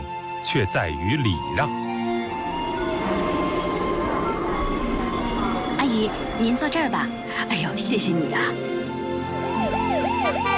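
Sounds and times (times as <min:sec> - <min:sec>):
speech: 0:00.4 - 0:01.9, 0:06.0 - 0:08.6
ambulance siren wailing: 0:01.6 - 0:06.4, 0:09.2 - 0:10.5.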